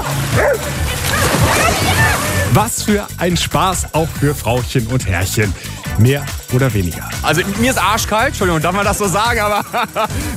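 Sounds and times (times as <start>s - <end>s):
dogs barking and yipping: 0.0s - 2.5s
laughter: 0.7s - 2.6s, 7.0s - 10.3s
speech: 2.6s - 10.3s.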